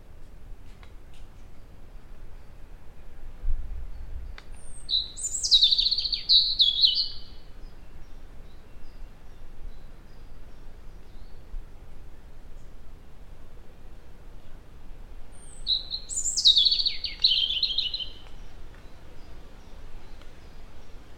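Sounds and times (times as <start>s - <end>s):
European robin Erithacus rubecula singing thin high warbled phrases: 3.9s - 11.5s, 15.3s - 21.1s.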